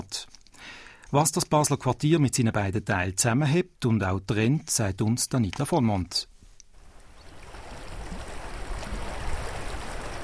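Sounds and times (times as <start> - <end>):
speech: 1.1 - 6.3
stream water splashing and babbling: 6.8 - 10.2.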